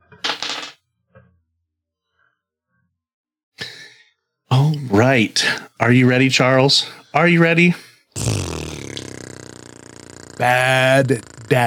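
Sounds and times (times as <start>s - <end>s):
dice clattering across a hard surface: 0.2s - 0.8s
speech: 4.6s - 8.7s, 10.4s - 11.6s.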